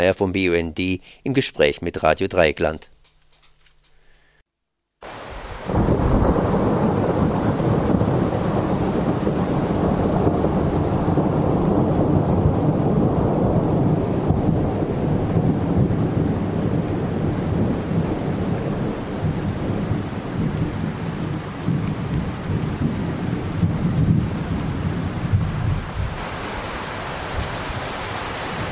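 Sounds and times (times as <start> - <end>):
speech: 0.0 - 2.9
heavy continuous rain in thunderstorm: 5.0 - 28.6
deep rolling thunder: 5.4 - 26.7.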